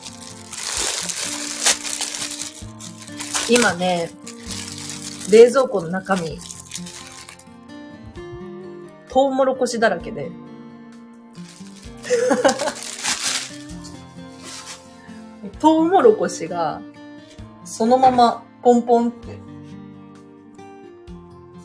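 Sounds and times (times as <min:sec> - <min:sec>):
fabric rustling while folding laundry: 0:00.0 - 0:07.4, 0:11.4 - 0:15.0
speech: 0:03.5 - 0:04.3, 0:05.3 - 0:06.9, 0:09.2 - 0:10.4, 0:12.1 - 0:12.7, 0:15.6 - 0:17.0, 0:17.8 - 0:19.4
person laughing: 0:12.0 - 0:13.0.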